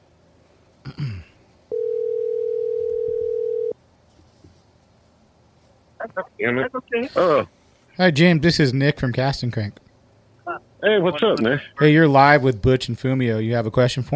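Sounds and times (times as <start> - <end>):
telephone ringing tone of an outgoing call: 1.7 - 3.8
speech: 6.2 - 9.8, 10.8 - 14.1.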